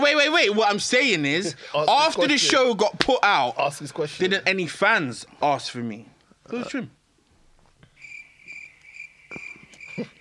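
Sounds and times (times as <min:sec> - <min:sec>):
speech: 0:00.4 - 0:07.0, 0:10.0 - 0:10.1
crickets chirping: 0:07.8 - 0:10.1.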